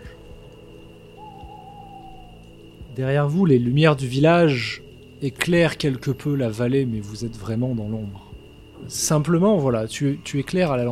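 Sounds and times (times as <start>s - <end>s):
owl hooting at night: 0.0s - 3.0s
constant low ambient hum: 0.0s - 10.9s
speech: 3.0s - 10.9s.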